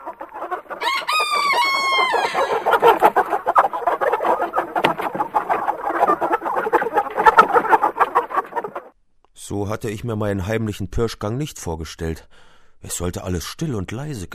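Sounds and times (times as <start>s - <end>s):
chorus of hens cackling and clucking: 0.0s - 9.0s
rooster crowing as it flies down from a bale of straw: 0.7s - 3.0s
speech: 9.5s - 14.3s.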